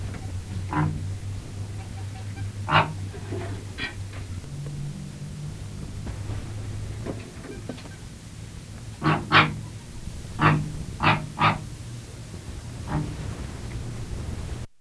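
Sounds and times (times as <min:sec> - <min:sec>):
Canada goose calling: 0:00.0 - 0:14.7.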